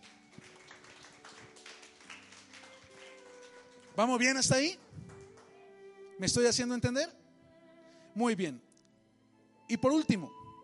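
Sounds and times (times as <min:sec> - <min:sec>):
church audience applauding: 0:00.0 - 0:05.6
speech: 0:04.0 - 0:04.8, 0:06.2 - 0:07.2, 0:08.2 - 0:08.7, 0:09.7 - 0:10.4.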